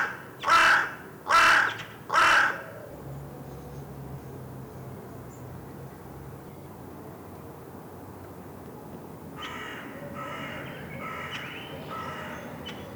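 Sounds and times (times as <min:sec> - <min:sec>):
Carrion crow Corvus corone cawing: 0:00.0 - 0:02.7, 0:09.4 - 0:12.8.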